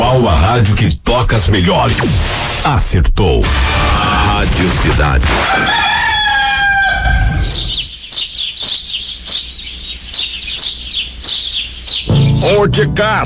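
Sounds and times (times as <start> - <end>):
speech: 0.2 - 6.2, 12.4 - 13.2
rooster crowing: 5.4 - 7.9
quick high bird chirps: 6.0 - 12.6.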